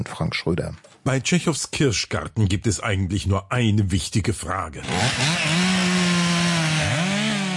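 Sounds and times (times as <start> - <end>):
speech: 0.1 - 5.8
chainsaw engine running and revving: 4.8 - 7.5.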